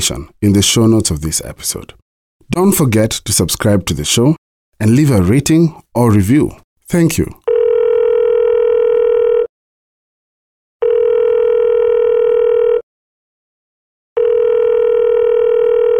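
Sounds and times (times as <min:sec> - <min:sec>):
speech: 0:00.0 - 0:07.4
telephone ringing on the line: 0:07.5 - 0:09.5, 0:10.8 - 0:12.8, 0:14.2 - 0:15.9.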